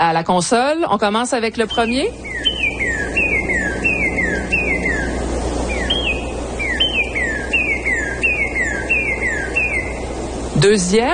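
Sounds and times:
speech: 0.0s - 2.3s, 10.6s - 11.1s
constant background hiss: 0.0s - 11.1s
Northern cardinal singing down-slurred whistles: 1.7s - 10.2s.

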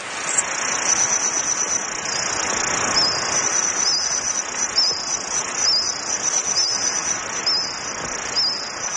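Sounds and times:
airy hiss: 0.0s - 8.9s
insects chirping in a reconstructed Jurassic forest soundscape: 0.0s - 8.9s.

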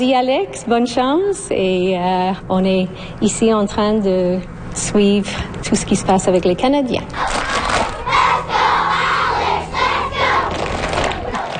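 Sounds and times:
speech: 0.0s - 7.4s
loud crowd of fans chanting at a hockey rally: 7.2s - 11.5s.

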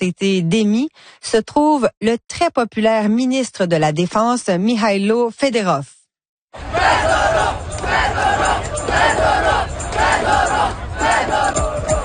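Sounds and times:
speech: 0.0s - 7.2s
large crowd of protesters chanting in city streets: 6.6s - 12.0s.

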